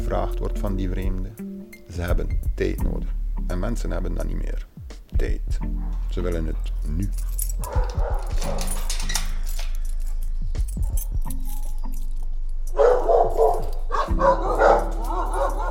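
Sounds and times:
speech: 0:00.1 - 0:09.2, 0:14.1 - 0:14.6
several lost, surrendered or confiscated dogs barking and yipping: 0:05.6 - 0:15.6
metallic rattling and jangling: 0:05.7 - 0:15.6.

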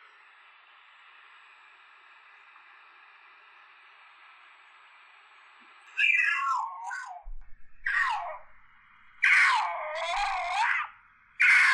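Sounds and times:
mountain lion screaming: 0:06.0 - 0:08.5, 0:09.1 - 0:11.7.

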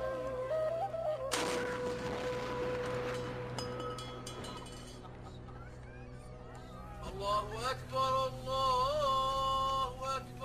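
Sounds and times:
outdoor noise: 0:00.0 - 0:10.4
iftar cannon firing to mark the breaking of the fast: 0:01.3 - 0:03.8
speech: 0:07.3 - 0:08.7.

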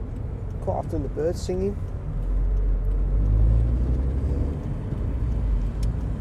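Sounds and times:
road traffic with cars driving past on a road: 0:00.0 - 0:06.1
speech: 0:00.7 - 0:01.9.

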